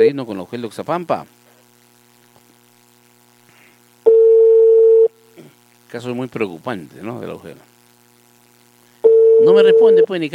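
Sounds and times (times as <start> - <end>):
speech: 0.0 - 1.4, 5.9 - 7.7, 9.4 - 10.3
telephone ringing tone while a call is being placed: 4.1 - 5.1, 9.0 - 10.1.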